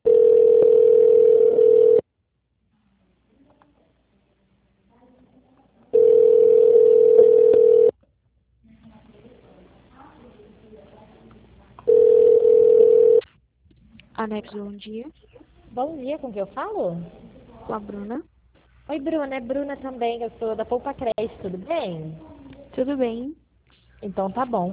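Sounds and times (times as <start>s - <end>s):
telephone ringback tone as a call connects: 0.0s - 2.0s, 6.0s - 7.9s, 11.9s - 13.2s
faint noise: 0.0s - 24.7s
speech: 14.3s - 18.3s, 18.9s - 23.4s, 24.0s - 24.7s.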